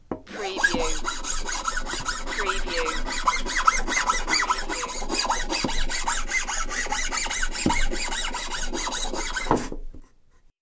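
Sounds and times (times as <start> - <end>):
file rasping on wood: 0.3 - 9.8.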